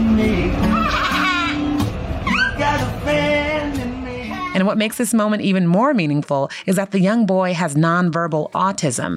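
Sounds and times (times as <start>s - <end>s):
man singing a song on a train: 0.0s - 4.6s
low steady rumble: 0.0s - 5.8s
speech: 4.6s - 9.1s.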